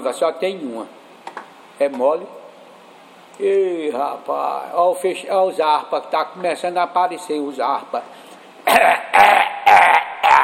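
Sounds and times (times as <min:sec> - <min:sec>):
speech: 0:00.0 - 0:01.0, 0:01.8 - 0:02.4, 0:03.4 - 0:09.2
man clearing his throat: 0:08.6 - 0:10.4.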